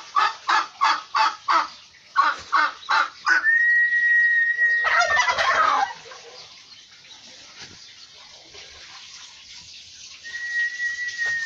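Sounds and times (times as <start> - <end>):
turkey loud rattling gobble: 0.0 - 3.7, 4.5 - 6.5
turkey yelping: 0.2 - 6.4
turkey long steady whistled tone: 3.4 - 5.0, 10.2 - 11.4.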